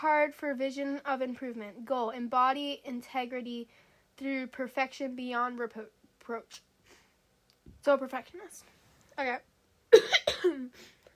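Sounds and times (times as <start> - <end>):
speech: 0.0 - 6.7, 7.8 - 11.0
rough coughs caused by allergies: 9.9 - 11.0.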